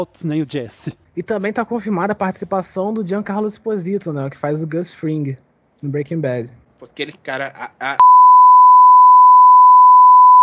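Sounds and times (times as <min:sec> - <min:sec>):
speech: 0:00.0 - 0:08.1
censor bleep tone covering a TV series spoiler: 0:08.0 - 0:10.4.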